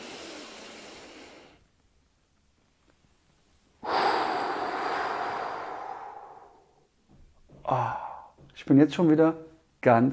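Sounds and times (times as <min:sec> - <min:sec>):
deep breathing during a relaxation exercise: 0:00.0 - 0:01.7, 0:03.8 - 0:07.0, 0:07.6 - 0:08.5
speech: 0:08.6 - 0:10.1.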